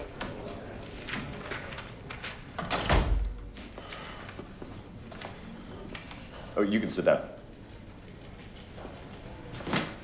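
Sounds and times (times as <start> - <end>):
door shutting: 2.6 - 3.4
speech: 6.6 - 7.4.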